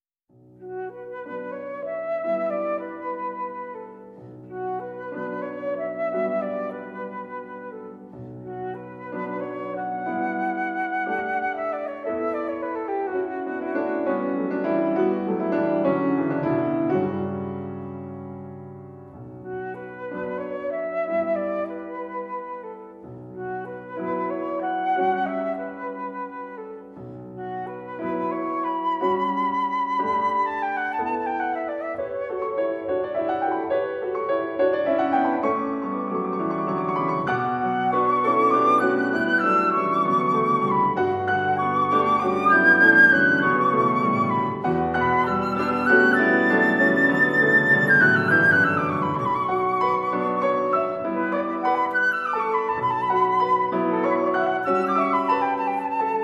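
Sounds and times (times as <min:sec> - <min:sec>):
flute sonatina: 0:00.5 - 0:56.2.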